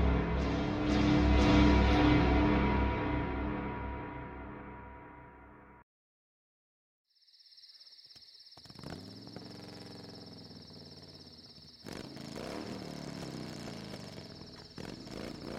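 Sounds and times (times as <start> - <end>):
Harley motorcycle engine drone at night on an empty highway: 0.0 - 4.7, 8.6 - 15.5
high whine of a Harley motorcycle: 0.0 - 5.7.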